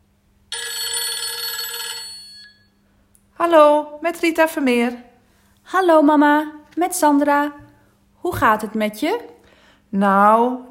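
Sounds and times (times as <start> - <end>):
telephone bell ringing: 0.5 - 2.8
speech: 3.4 - 5.1, 5.7 - 7.6, 8.2 - 9.3, 9.9 - 10.6.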